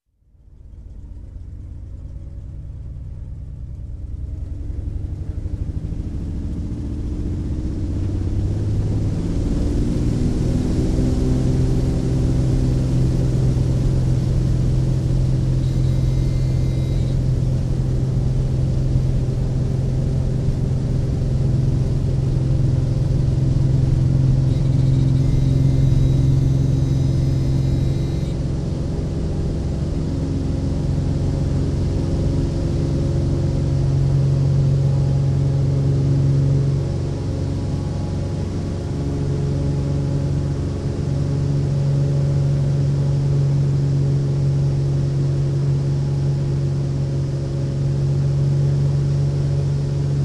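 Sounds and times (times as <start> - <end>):
propeller aircraft in flight heard from cockpit: 0.0 - 50.2.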